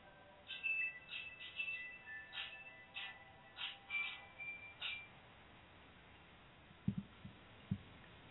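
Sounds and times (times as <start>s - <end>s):
phone ringing with bright electronic chirping tones: 0.1s - 5.2s
soft low thumps: 6.7s - 8.2s.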